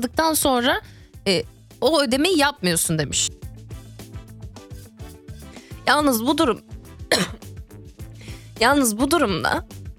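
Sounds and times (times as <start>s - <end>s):
speech: 0.0s - 3.4s, 5.9s - 7.4s, 8.6s - 9.8s
soft rhythmic music bed: 0.0s - 9.9s
person having a raspy coughing fit: 7.1s - 7.5s.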